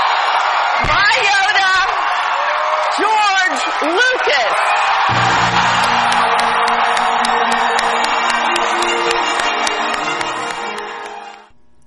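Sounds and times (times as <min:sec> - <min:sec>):
large audience cheering and whooping: 0:00.0 - 0:11.5
speech: 0:03.8 - 0:05.5
faint clapping: 0:05.2 - 0:11.5.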